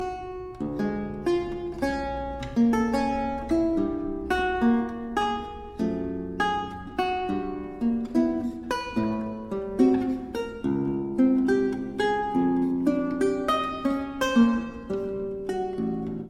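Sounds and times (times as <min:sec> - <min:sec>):
lute suite basse danse: 0:00.0 - 0:16.2.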